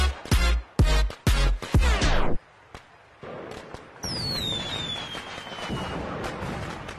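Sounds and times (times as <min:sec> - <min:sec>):
firework crackling pops: 0:00.2 - 0:06.9
booming firework blasts: 0:03.2 - 0:06.9.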